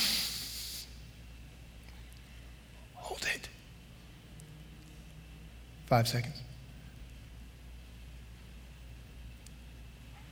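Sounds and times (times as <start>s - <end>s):
deep breath drawn in during a guided breathing exercise: 0.0s - 0.9s
speech: 5.9s - 6.5s.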